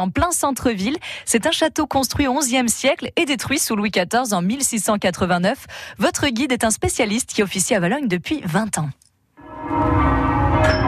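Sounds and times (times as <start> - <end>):
speech: 0.0 - 9.0
church bells ringing at the castle square in Valognes France: 9.4 - 10.8.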